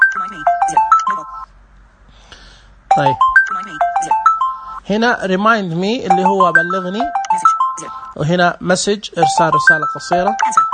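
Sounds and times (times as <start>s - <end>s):
mobile phone ringing with an incoming call: 0.0s - 1.5s, 2.9s - 4.9s, 6.1s - 8.3s, 9.2s - 10.7s
speech: 0.2s - 0.6s, 3.0s - 3.3s, 4.9s - 10.6s.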